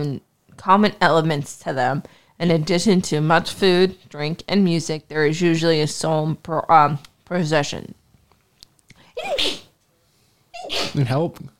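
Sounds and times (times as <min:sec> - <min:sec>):
speech: 0:00.0 - 0:08.0, 0:10.7 - 0:11.5
breaths: 0:02.0 - 0:02.4, 0:08.9 - 0:09.2, 0:09.9 - 0:10.5
sharp loud sneeze: 0:09.2 - 0:09.8, 0:10.6 - 0:11.1.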